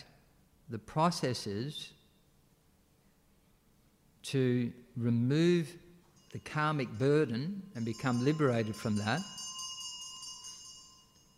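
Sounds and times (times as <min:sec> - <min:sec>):
speech: 0:00.7 - 0:02.0, 0:04.2 - 0:09.4
soft bell ringing: 0:06.0 - 0:11.3.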